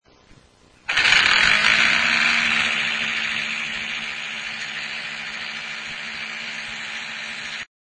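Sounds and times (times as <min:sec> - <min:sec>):
Toshiba 60GB hard disk with degraded motor loud grinding: 0:00.9 - 0:07.7.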